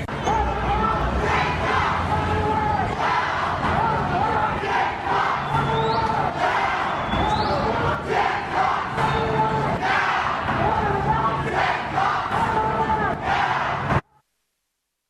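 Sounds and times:
large crowd chanting in unison: 0:00.1 - 0:14.0
whistles: 0:05.3 - 0:07.8.

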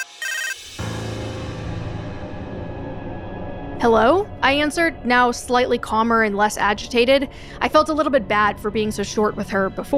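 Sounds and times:
phone ringtone: 0:00.0 - 0:00.6
short bright electronic beep of a phone: 0:00.0 - 0:00.6
speech: 0:03.8 - 0:09.9.

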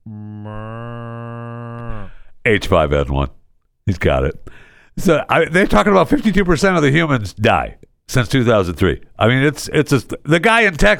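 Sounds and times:
sick cow mooing: 0:00.3 - 0:02.1
speech: 0:02.4 - 0:10.9.

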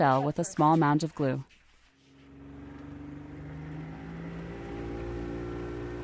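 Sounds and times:
speech: 0:00.0 - 0:01.6
motorboat engine droning heading out into a bay: 0:02.0 - 0:06.0.

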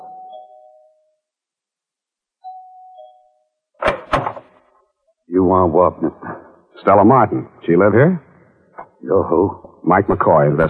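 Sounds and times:
doorbell chiming a two-tone ding-dong: 0:00.0 - 0:01.1, 0:02.4 - 0:03.5
speech: 0:05.4 - 0:08.2, 0:09.0 - 0:10.6.

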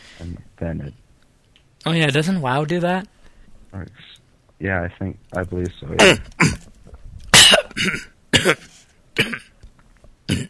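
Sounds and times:
speech: 0:00.2 - 0:01.0, 0:01.8 - 0:06.7, 0:07.8 - 0:09.4
person coughing after choking on water: 0:06.0 - 0:06.6, 0:07.3 - 0:09.5, 0:10.3 - 0:10.4.

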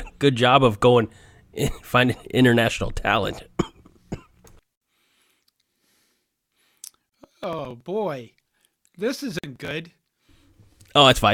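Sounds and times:
speech: 0:00.2 - 0:03.6, 0:07.4 - 0:08.4, 0:09.0 - 0:10.0, 0:10.9 - 0:11.3
faint breathing: 0:01.1 - 0:01.6, 0:04.9 - 0:07.1
short harsh cough: 0:01.6 - 0:01.9, 0:03.3 - 0:04.4.

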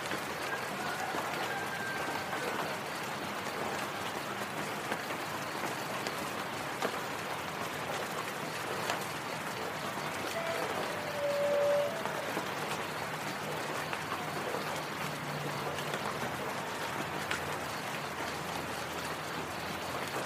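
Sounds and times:
raindrops pattering: 0:00.0 - 0:20.2
brief high whistling tone: 0:10.3 - 0:12.4.

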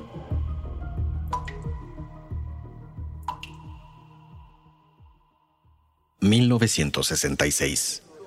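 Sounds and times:
water dripping from a ceiling leak: 0:00.3 - 0:04.7
speech: 0:06.2 - 0:08.1.

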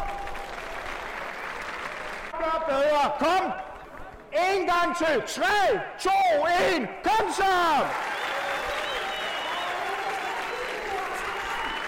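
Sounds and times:
large crowd of runners applauding: 0:00.0 - 0:02.7, 0:07.4 - 0:11.8
speech: 0:02.5 - 0:03.7, 0:04.3 - 0:08.1.

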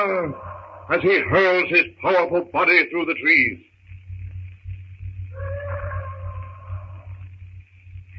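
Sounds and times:
bull ape roaring: 0:00.0 - 0:01.0, 0:05.4 - 0:07.1
speech: 0:00.0 - 0:03.7
steady low rumbling hum: 0:00.0 - 0:08.1.

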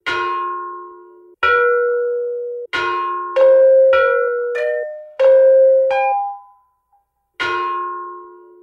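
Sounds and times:
ancient bronze bells struck in a slow melodic sequence: 0:00.0 - 0:08.6.

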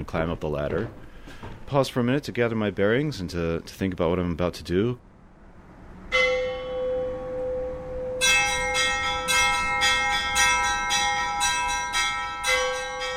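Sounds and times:
speech: 0:00.0 - 0:05.1
church bells rung by hand in tower: 0:06.1 - 0:13.1.

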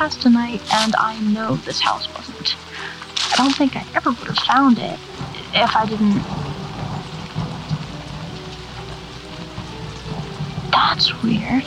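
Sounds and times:
speech: 0:00.0 - 0:06.5, 0:10.8 - 0:11.6
deep continuous rumble: 0:00.0 - 0:11.6
heavy rain at night: 0:00.0 - 0:11.6.

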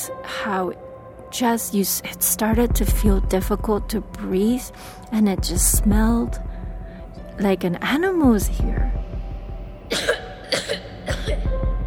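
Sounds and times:
speech: 0:00.0 - 0:06.5, 0:07.4 - 0:09.0
low rumble: 0:01.3 - 0:11.8
person coughing: 0:09.9 - 0:11.5.

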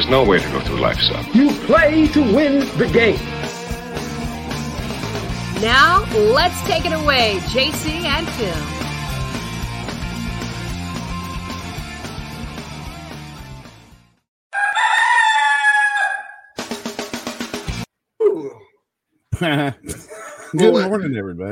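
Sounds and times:
music: 0:00.0 - 0:14.3, 0:16.6 - 0:17.9
speech: 0:00.1 - 0:03.5, 0:05.6 - 0:08.8, 0:19.4 - 0:21.4
rooster crowing: 0:14.5 - 0:16.6
laughter: 0:19.4 - 0:21.1.

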